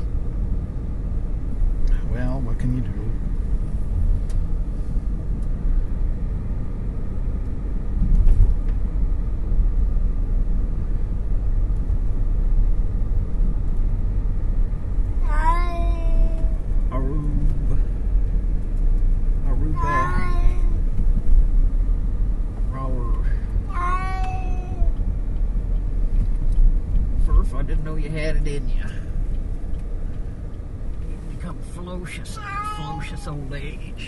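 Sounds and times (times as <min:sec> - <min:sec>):
steady low engine-like rumble: 0:00.0 - 0:34.0
speech: 0:02.5 - 0:03.3
cat meowing: 0:15.2 - 0:16.6, 0:19.8 - 0:20.8, 0:23.7 - 0:24.9, 0:32.3 - 0:33.5.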